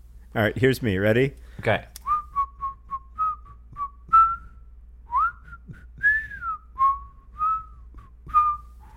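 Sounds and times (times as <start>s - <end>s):
speech: 0.4s - 1.9s
person whistling a slow wandering tune: 2.0s - 8.9s.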